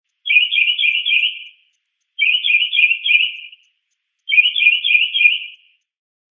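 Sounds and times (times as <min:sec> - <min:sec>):
mockingbird chattering: 0:00.2 - 0:03.7, 0:04.3 - 0:05.7.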